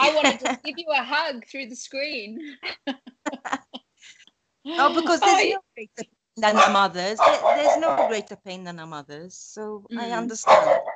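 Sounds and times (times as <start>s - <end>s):
laughter: 0.0s - 0.8s, 4.8s - 5.6s
speech: 0.2s - 3.6s, 4.6s - 10.9s
dog barking: 6.6s - 8.2s, 10.4s - 10.9s.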